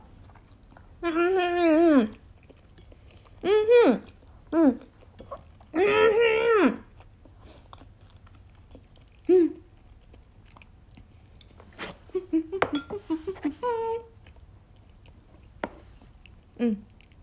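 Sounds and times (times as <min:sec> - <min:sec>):
soft chewing of stir-fried pepper steak: 0:00.0 - 0:17.2.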